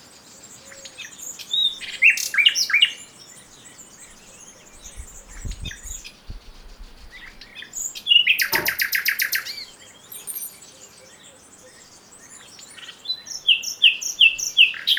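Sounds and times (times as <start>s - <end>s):
Common nightingale Luscinia megarhynchos singing varied phrases of chirps and whistles: 0.5s - 14.9s.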